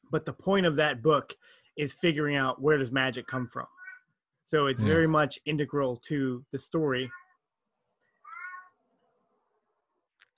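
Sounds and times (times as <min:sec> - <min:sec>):
speech: 0:00.1 - 0:03.8, 0:04.5 - 0:07.2
cat meowing: 0:07.0 - 0:07.4, 0:08.1 - 0:08.8.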